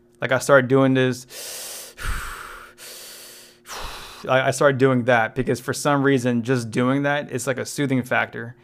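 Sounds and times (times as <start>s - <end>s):
speech: 0.2s - 2.2s, 4.2s - 8.6s
person breathing heavily with deep forceful breaths: 1.3s - 4.3s.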